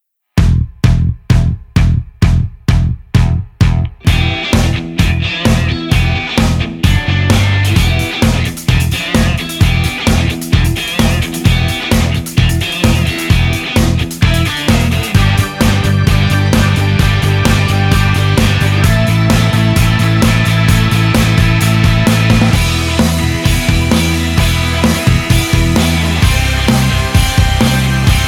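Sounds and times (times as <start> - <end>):
west coast rock backing track: 0.4 - 28.2.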